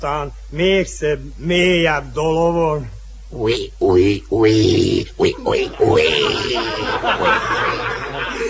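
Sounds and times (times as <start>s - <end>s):
speech: 0.0s - 7.8s
voice imitating a pig's grunting and snorting oink: 3.4s - 7.2s
laughter: 5.2s - 8.4s.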